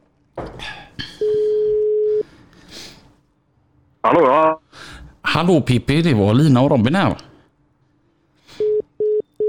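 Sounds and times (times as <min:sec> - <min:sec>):
phone ringing tone beep: 0:01.2 - 0:02.2, 0:08.6 - 0:09.4
speech: 0:04.1 - 0:04.6, 0:05.4 - 0:07.3.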